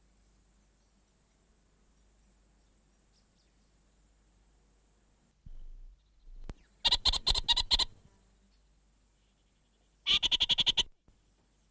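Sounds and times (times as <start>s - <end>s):
orange-fronted parakeet chatter: 6.8s - 7.9s, 10.1s - 10.9s.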